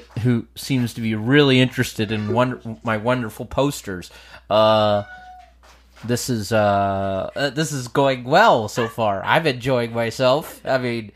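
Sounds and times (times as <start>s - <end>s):
speech: 0.2s - 5.2s, 6.0s - 11.1s
cat meowing: 4.9s - 5.6s, 8.8s - 9.0s.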